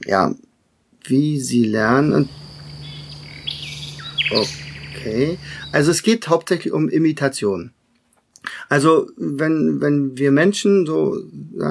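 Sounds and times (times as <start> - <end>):
speech: 0.0 - 0.4, 1.0 - 2.4, 4.3 - 7.8, 8.4 - 11.6
nightingale singing: 1.8 - 6.0.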